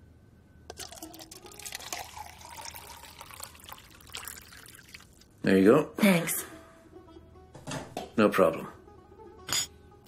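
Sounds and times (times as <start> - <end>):
tea pouring into a cup: 0.7 - 5.4
speech: 5.5 - 6.5, 8.2 - 8.8.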